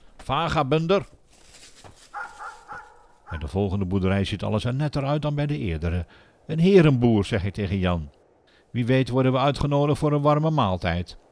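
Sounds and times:
speech: 0.3 - 1.2, 3.3 - 11.2
farmer's dog barking at people on a farmyard: 2.1 - 3.5.

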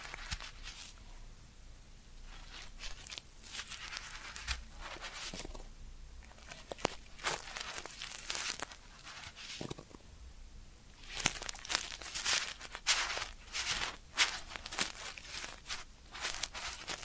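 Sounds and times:
ear cleaning scratching and rustling: 0.0 - 1.0, 2.3 - 5.6, 6.3 - 9.9, 11.0 - 17.0.

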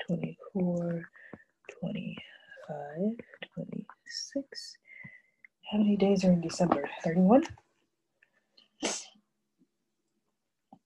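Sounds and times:
speech: 0.1 - 1.1, 5.8 - 7.6
loud sharp nasal sniff: 8.8 - 9.1.

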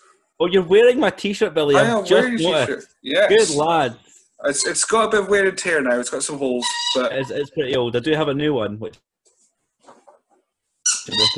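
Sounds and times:
speech: 0.4 - 9.1, 11.1 - 11.3
dog squeaking a squeaky toy: 6.6 - 7.6, 10.8 - 11.3.

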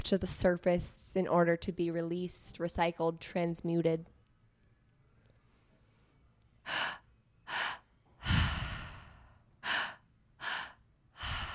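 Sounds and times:
speech: 0.1 - 4.1, 6.7 - 7.0
loud rhythmic breathwork breathing with belly and chest inhales and exhales: 5.4 - 11.5.

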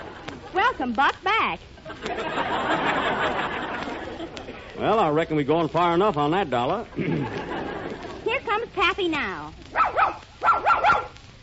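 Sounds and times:
speech: 0.6 - 3.6, 4.5 - 7.7, 8.8 - 10.2
laughter: 1.8 - 5.0, 6.8 - 8.4
puppy barking in high-pitched yaps: 9.7 - 11.2.

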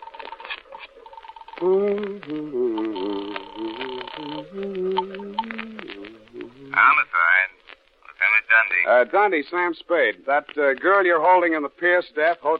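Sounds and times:
telephone ringing tone over the line: 0.0 - 1.7, 2.6 - 5.6
speech: 1.6 - 5.3, 6.8 - 7.1, 8.6 - 12.5.

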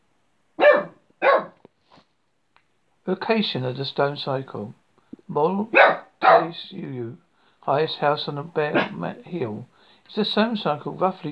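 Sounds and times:
dog barking on a bare hill by an ancient stone circle in Wales: 0.6 - 1.6, 5.7 - 6.6, 8.7 - 9.0
speech: 3.1 - 11.3.

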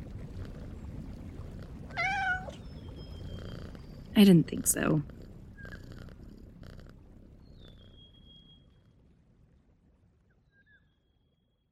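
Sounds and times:
steady low rumbling noise: 0.0 - 10.5
cat meowing: 1.9 - 2.6
speech: 4.2 - 5.2.

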